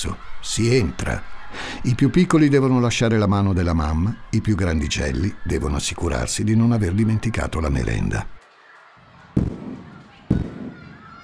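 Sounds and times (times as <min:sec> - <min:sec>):
speech: 0:00.0 - 0:08.4
firecracker-like bangs: 0:09.4 - 0:11.2.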